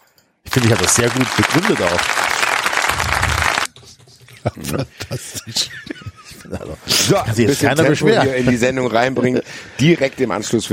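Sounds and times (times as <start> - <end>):
speech: 0.5 - 2.4, 4.4 - 10.7
canned applause honouring a winner at an awards segment: 0.5 - 3.7
laughter: 4.2 - 8.8.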